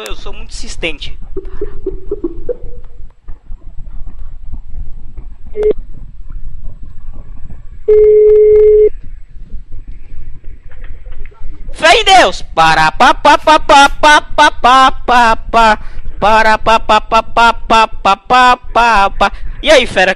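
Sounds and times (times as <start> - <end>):
speech: 0.0 - 1.6, 5.6 - 5.8, 12.0 - 20.1
telephone dialing tones: 7.9 - 8.9.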